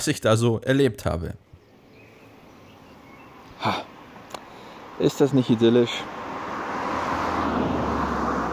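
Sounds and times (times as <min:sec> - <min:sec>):
speech: 0:00.0 - 0:01.4, 0:03.6 - 0:03.9, 0:05.0 - 0:06.2
car speeding past on an open road: 0:04.0 - 0:08.5.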